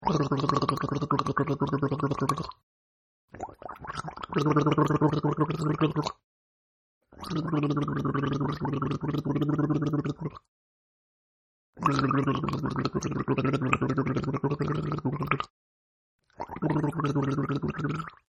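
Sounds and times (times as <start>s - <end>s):
man gargling water: 0.0s - 2.6s, 3.3s - 6.2s, 7.1s - 10.5s, 11.8s - 15.5s, 16.3s - 18.2s.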